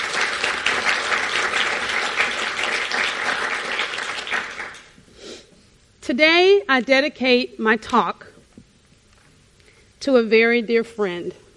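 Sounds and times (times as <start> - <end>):
crowd applause: 0.0 - 4.9
speech: 6.1 - 8.3, 10.0 - 11.4.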